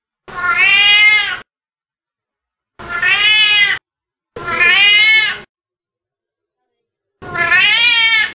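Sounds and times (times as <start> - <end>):
cat meowing: 0.3 - 1.5, 2.9 - 3.8, 4.4 - 5.5, 7.2 - 8.3.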